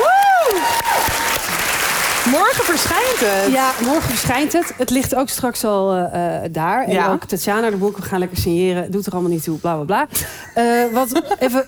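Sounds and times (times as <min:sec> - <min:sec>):
person whooping or cheering: 0:00.0 - 0:01.4
audience applause: 0:00.0 - 0:04.8
speech: 0:02.3 - 0:11.6.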